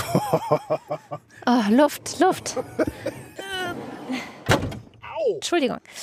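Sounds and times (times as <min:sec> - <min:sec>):
laughter: 0:00.0 - 0:01.4, 0:02.3 - 0:04.3
speech: 0:00.3 - 0:03.2, 0:05.2 - 0:06.0
van door slamming shut with a solid thud: 0:04.4 - 0:04.9.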